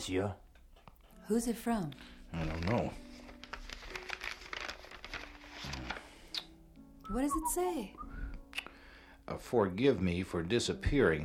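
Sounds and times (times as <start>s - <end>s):
speech: 0.0s - 0.4s, 1.3s - 3.1s, 7.1s - 8.1s, 9.3s - 11.2s
paper note rustling and crinkling as it is unfolded at a hotel desk in Marrakesh: 2.2s - 6.3s.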